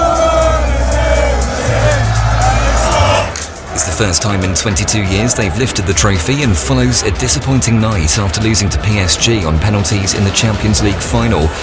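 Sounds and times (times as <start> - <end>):
thousands of football fans cheering in a street: 0.0 - 11.6
speech: 4.0 - 11.6.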